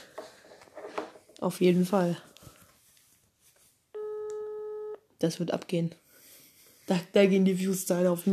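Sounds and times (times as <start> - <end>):
speech: 1.4 - 2.3, 5.2 - 6.0, 6.9 - 8.3
electronic ringing tone of an outgoing call to a mobile phone: 4.0 - 5.0.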